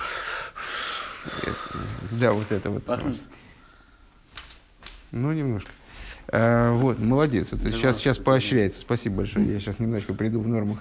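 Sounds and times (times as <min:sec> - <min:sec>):
loud breathing into a microphone: 0:00.0 - 0:02.2, 0:03.3 - 0:04.2, 0:05.8 - 0:06.3
speech: 0:01.5 - 0:03.4, 0:05.1 - 0:10.7.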